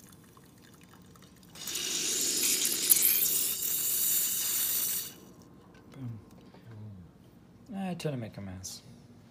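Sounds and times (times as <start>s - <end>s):
coffee forced through a brewer as the plunger is pressed: 1.6s - 5.3s
speech: 7.9s - 8.9s.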